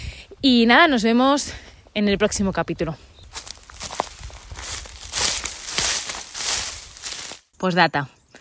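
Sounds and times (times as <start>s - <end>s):
speech: 0.4s - 3.1s, 7.6s - 8.2s
footsteps crunching across rough outdoor ground: 2.9s - 7.5s.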